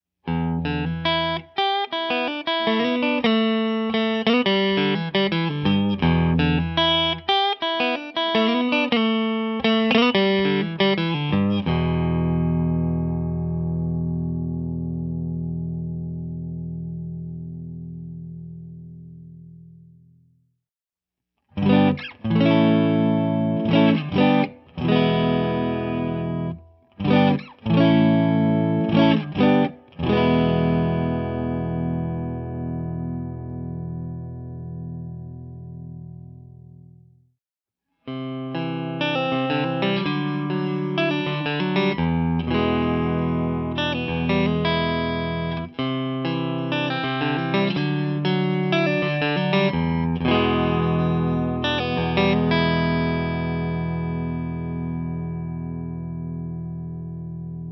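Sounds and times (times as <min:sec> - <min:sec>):
clean electric guitar on neck pickup: 0:00.2 - 0:20.3, 0:21.5 - 0:37.2, 0:38.0 - 0:57.7.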